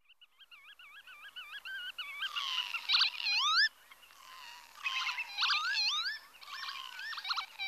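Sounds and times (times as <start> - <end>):
northern lapwing calling: 0.4 - 7.6.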